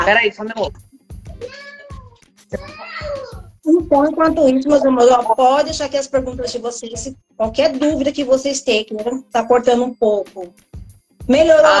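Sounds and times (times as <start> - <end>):
speech: 0.0 - 1.7, 3.7 - 10.7, 11.3 - 11.7
cat meowing between a person's legs in a bedroom: 1.3 - 3.4.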